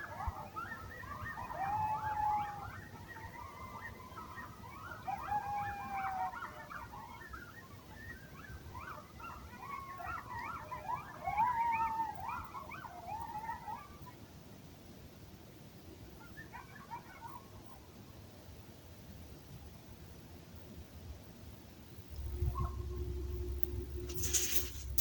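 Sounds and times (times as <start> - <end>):
coyotes howling at dawn: 0.0 - 14.3, 16.2 - 17.8, 22.1 - 25.0
background hiss: 21.8 - 25.0.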